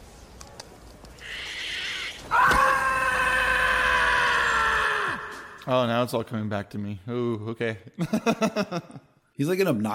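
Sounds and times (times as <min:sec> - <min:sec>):
voice imitating a shrill high-pitched scream: 0:01.2 - 0:05.7
speech: 0:05.6 - 0:09.9.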